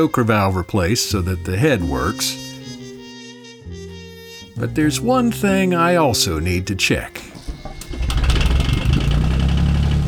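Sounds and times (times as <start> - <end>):
speech: 0.0 - 2.6, 4.6 - 7.3
boat engine cranked, starting and idling: 7.2 - 10.0.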